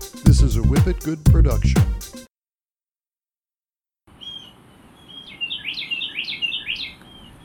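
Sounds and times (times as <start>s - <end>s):
speech: 0.4s - 2.3s
soft outdoor hiss: 4.1s - 7.4s
birds chirping and singing: 4.2s - 7.4s.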